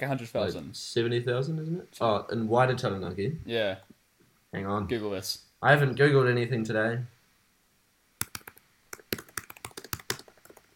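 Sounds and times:
speech: 0.0 - 7.2
typing on a computer keyboard: 8.2 - 10.7.

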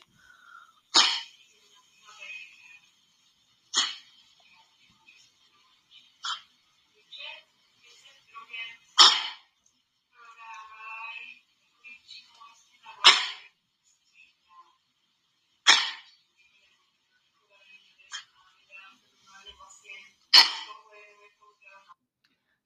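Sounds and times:
dog with kennel cough coughing: 0.9 - 1.3, 3.8 - 4.1, 9.0 - 9.4, 13.0 - 13.4, 15.7 - 16.1, 20.4 - 20.7.

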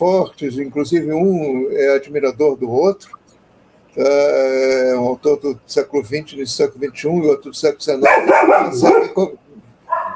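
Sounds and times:
speech: 0.0 - 3.2, 4.0 - 9.4
Dalmatian barking: 8.0 - 9.3, 9.9 - 10.1.

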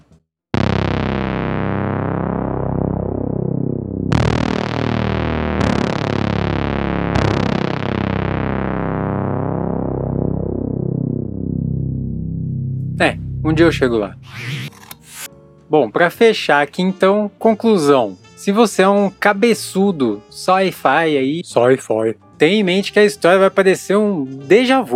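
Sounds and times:
heavy distorted cinematic brass-like blasts imitating a film-score sound effect: 0.5 - 15.3
speech: 13.0 - 14.6, 15.7 - 24.9.

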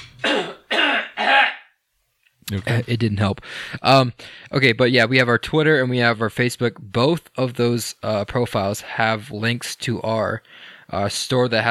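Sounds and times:
throat-clearing coughs: 0.2 - 1.7
speech: 2.5 - 11.7.

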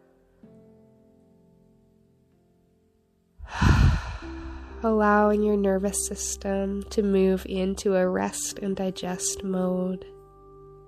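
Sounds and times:
deep breath during a guided relaxation exercise: 3.4 - 4.9
speech: 4.8 - 10.2.

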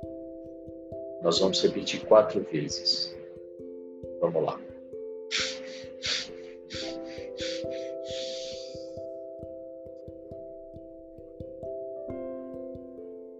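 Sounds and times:
soft sustained music: 0.0 - 13.3
speech: 1.2 - 3.2, 4.2 - 4.7
long drawn breath for a breathing exercise: 5.3 - 9.0
short sharp sniffs through the nose for a breathing exercise: 5.3 - 9.0.

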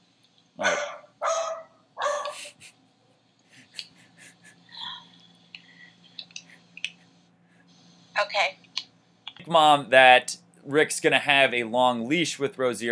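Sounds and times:
dog barking: 0.6 - 2.4
speech: 9.5 - 12.9.

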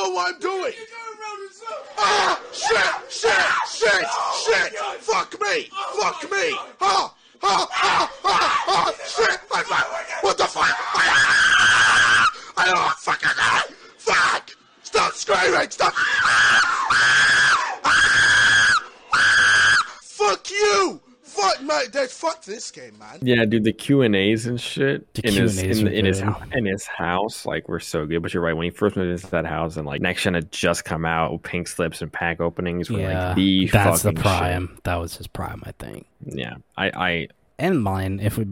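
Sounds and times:
speech: 0.2 - 12.0, 12.6 - 14.4, 15.0 - 18.4, 20.2 - 38.4
men yelling and screaming into a close microphone: 1.8 - 14.5, 15.8 - 20.0.

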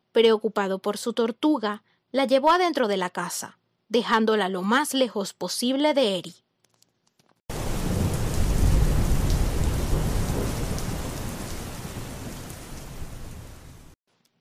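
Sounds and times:
speech: 0.2 - 6.4
deep thunder rumble: 7.5 - 14.0
heavy rain pouring: 7.5 - 14.0.

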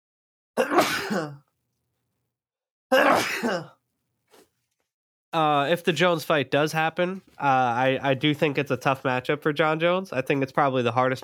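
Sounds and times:
person sneezing: 0.6 - 1.4, 2.9 - 4.5
speech: 0.6 - 1.4, 2.9 - 3.8, 5.3 - 11.2.

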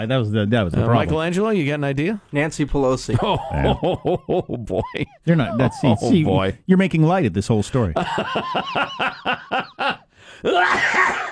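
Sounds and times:
speech: 0.0 - 11.3
laughter: 3.1 - 6.6, 8.0 - 11.3
person coughing: 10.5 - 11.3.

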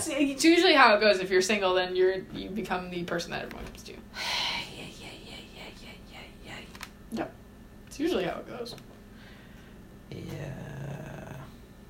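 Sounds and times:
speech: 0.0 - 4.9, 8.0 - 8.9
animal growling: 10.1 - 11.6.

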